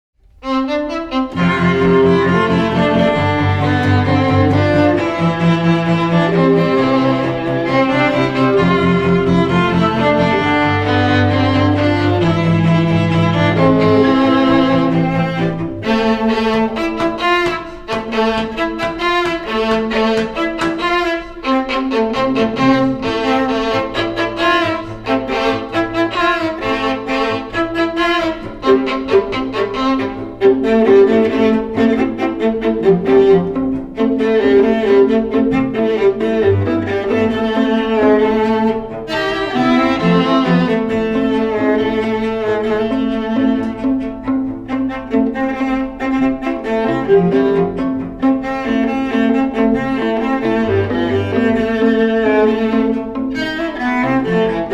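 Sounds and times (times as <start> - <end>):
string ensemble: 0.2 - 54.7.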